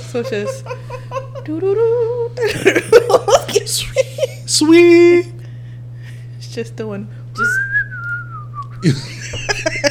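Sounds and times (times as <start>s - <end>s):
laughter: 0.0s - 1.7s, 2.4s - 4.5s, 8.8s - 9.9s
steady low hum: 0.0s - 9.9s
speech: 0.1s - 5.4s, 6.6s - 7.6s, 8.8s - 9.9s
person whistling a gliding note: 7.4s - 8.9s.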